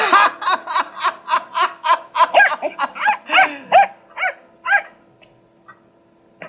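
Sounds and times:
laughter: 0.0 - 3.8
cocker spaniel barking: 2.3 - 5.0.

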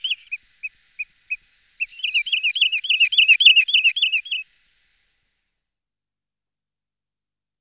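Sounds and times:
wood sandpiper calls: 0.0 - 4.5.

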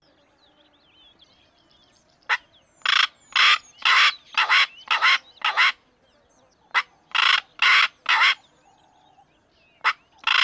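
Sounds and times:
black korhaan calling with rasping squawks: 2.3 - 5.8, 6.7 - 8.4, 9.8 - 10.4.

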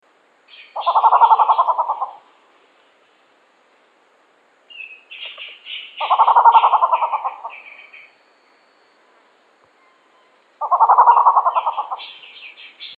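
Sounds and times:
grey peacock-pheasant low rattling calls: 0.4 - 3.3, 4.6 - 12.9
grey peacock-pheasant higher soft chattering notes: 0.5 - 2.3, 4.7 - 8.1, 9.8 - 12.9.

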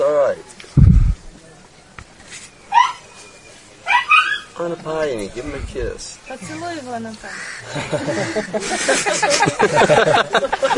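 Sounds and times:
speech: 0.3 - 0.6, 4.8 - 10.7
puppy high-pitched whimpering yelps: 3.9 - 4.5
laughter: 7.6 - 10.7.

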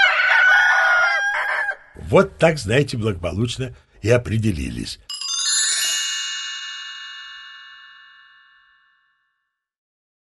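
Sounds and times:
two roosters crowing together: 0.0 - 2.0
speech: 2.1 - 5.1.

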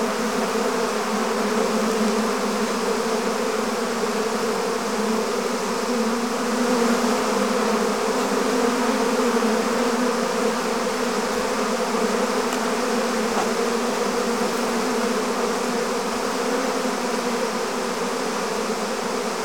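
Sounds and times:
swarm of bees buzzing: 0.1 - 19.4
faint ticks: 12.5 - 12.7.

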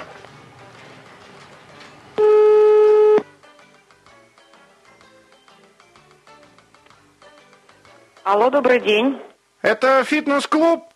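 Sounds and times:
telephone call buzzing ring tone: 2.2 - 3.2
speech: 8.3 - 10.9.

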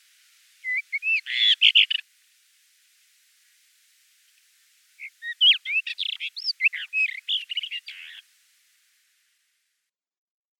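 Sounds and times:
common rock thrush Monticola saxatilis singing: 0.6 - 2.0, 5.0 - 8.2.

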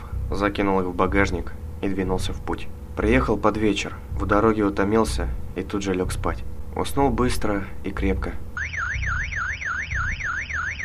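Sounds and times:
speech: 0.3 - 8.4
car alarm wailing outside a house in the woods: 8.6 - 10.8.

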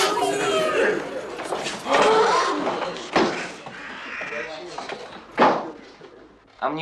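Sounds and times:
murmuring voices in a classroom: 0.0 - 6.3
crow caught in a rag cawing in a classroom: 3.7 - 4.5.

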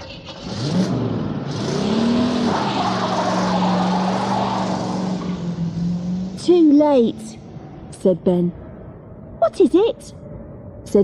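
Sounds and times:
van engine revving and driving off: 0.0 - 6.8
speech: 6.8 - 7.4, 8.0 - 8.6, 9.5 - 10.2.

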